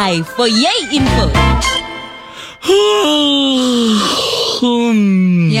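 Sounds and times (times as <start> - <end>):
speech: 0.1 - 1.9, 2.6 - 5.5
person yawning: 2.3 - 5.5.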